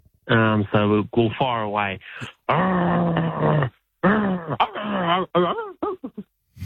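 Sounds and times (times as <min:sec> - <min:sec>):
speech: 0:00.3 - 0:03.8, 0:05.1 - 0:05.7
person imitating a growling dog: 0:02.5 - 0:05.6.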